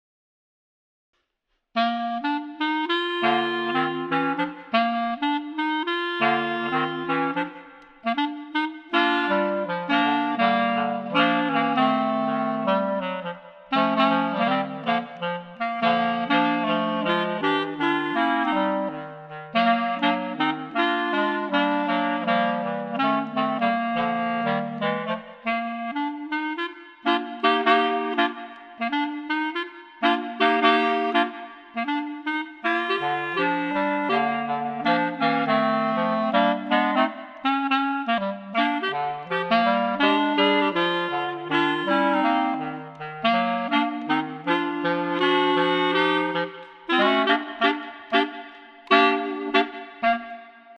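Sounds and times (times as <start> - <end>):
clarinet trio playing: 1.8 - 50.7.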